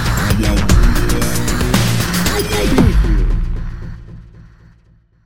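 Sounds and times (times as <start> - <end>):
menacing music sting bumper: 0.2 - 3.8.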